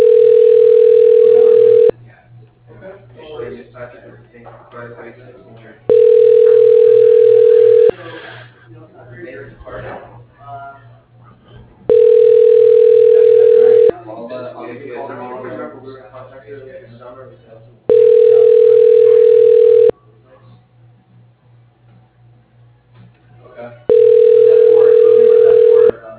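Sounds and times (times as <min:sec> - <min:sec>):
ringback tone of a call placed to an office extension: 0:00.0 - 0:01.9, 0:05.9 - 0:07.9, 0:11.9 - 0:13.9, 0:17.9 - 0:19.9, 0:23.9 - 0:25.9.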